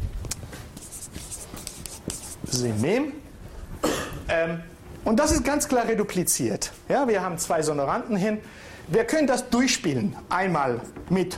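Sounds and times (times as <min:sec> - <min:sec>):
scratchy strokes of someone writing a word down: 0:00.8 - 0:02.6
speech: 0:02.5 - 0:03.2, 0:04.3 - 0:11.3.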